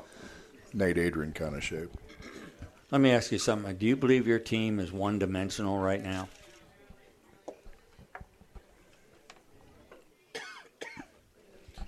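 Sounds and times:
speech: 0:00.7 - 0:02.3, 0:02.9 - 0:06.4
person coughing: 0:10.4 - 0:11.1.

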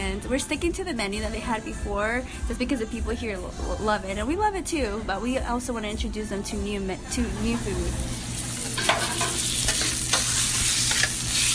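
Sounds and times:
speech: 0:00.2 - 0:08.2
chicken fajitas sizzling on a hot grill top: 0:07.5 - 0:11.5.

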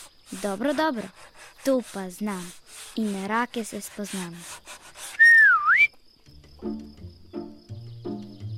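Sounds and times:
speech: 0:00.3 - 0:04.7, 0:06.6 - 0:07.0
person whistling a short loud melodic phrase: 0:05.1 - 0:06.0.

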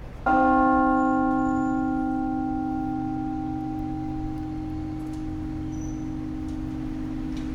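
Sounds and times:
large two-ton modern-cast church bell ringing: 0:00.2 - 0:07.5.

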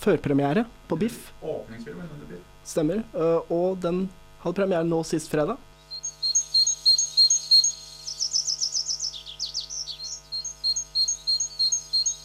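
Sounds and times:
speech: 0:00.0 - 0:05.7
great tit calling: 0:05.8 - 0:12.2.

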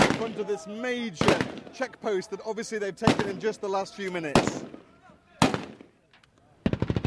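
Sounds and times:
gunfire aimed at green flag bunting on a lamppost in front of a major checkpoint: 0:00.0 - 0:00.6, 0:01.2 - 0:01.9, 0:03.0 - 0:03.6, 0:04.3 - 0:04.8, 0:05.4 - 0:05.9, 0:06.6 - 0:07.0
speech: 0:00.3 - 0:04.8.

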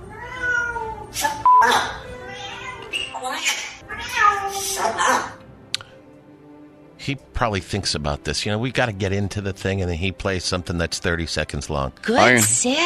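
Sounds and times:
cat meowing while being trained to sit: 0:00.0 - 0:05.4
speech: 0:01.2 - 0:01.9, 0:07.1 - 0:12.8.

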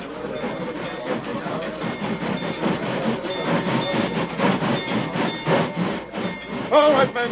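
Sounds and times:
train rumbling across a bridge: 0:00.0 - 0:07.3
speech: 0:06.8 - 0:07.3.

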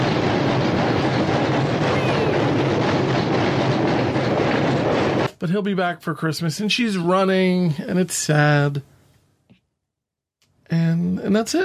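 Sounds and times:
rhythmic clatter of train wheels: 0:00.0 - 0:05.4
train rumbling along the tracks: 0:00.0 - 0:05.4
speech: 0:05.4 - 0:08.9, 0:10.7 - 0:11.6.

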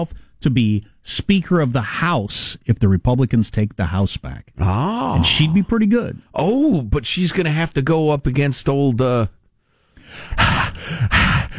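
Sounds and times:
speech: 0:00.0 - 0:09.4
heavy mouth breathing: 0:09.8 - 0:11.5.

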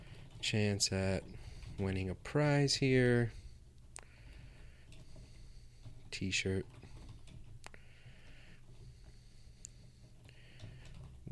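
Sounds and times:
speech: 0:00.4 - 0:03.4, 0:06.2 - 0:06.8
typing on a computer keyboard: 0:04.3 - 0:07.7, 0:10.4 - 0:11.3.

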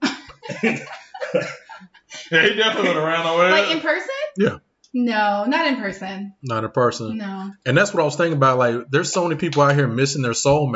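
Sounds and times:
person coughing harshly: 0:00.0 - 0:01.7
laughter: 0:00.0 - 0:03.8
speech: 0:00.5 - 0:01.6, 0:02.3 - 0:10.7.

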